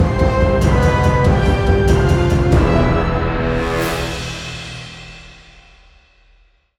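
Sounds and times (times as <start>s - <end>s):
fantasy adventure music for a lost battle: 0.0s - 5.4s.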